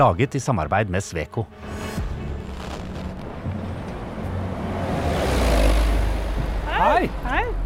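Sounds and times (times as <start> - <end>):
speech: 0.0 - 2.1, 6.9 - 7.6
vehicle passing on a city street: 1.6 - 7.6
steady urban traffic rumble at a bus stop: 2.0 - 7.6.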